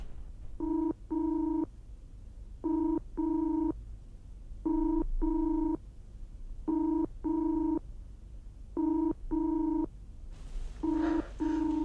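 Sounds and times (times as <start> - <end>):
telephone ringback tone in paired bursts on the line: 0.6 - 1.7, 2.7 - 3.7, 4.7 - 5.8, 6.7 - 7.8, 8.8 - 9.9, 10.8 - 11.8
noisy rustling: 10.3 - 11.8.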